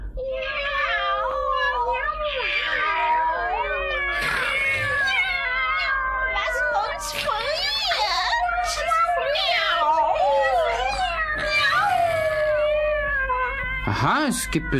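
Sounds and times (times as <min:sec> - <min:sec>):
large black cats yowling and meowing in a castle: 0:00.1 - 0:14.7
speech: 0:14.0 - 0:14.7.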